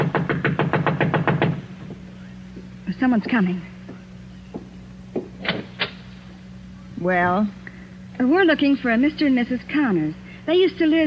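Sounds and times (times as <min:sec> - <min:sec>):
knocking on a door: 0:00.0 - 0:02.0, 0:03.9 - 0:05.6
low hum: 0:00.0 - 0:11.0
speech: 0:03.0 - 0:03.7, 0:07.0 - 0:07.6, 0:08.2 - 0:11.0.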